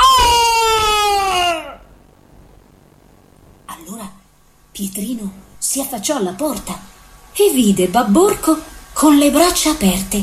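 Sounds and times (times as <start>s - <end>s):
person voicing the desperate scream of a falling ogre: 0.0s - 1.9s
speech: 4.8s - 10.2s.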